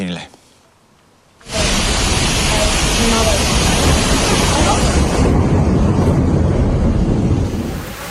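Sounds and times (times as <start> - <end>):
speech: 0.1 - 0.4
torrential rain: 0.8 - 8.0
rushing floodwater: 1.4 - 6.1, 7.4 - 8.0
wind buffeting: 1.4 - 8.0.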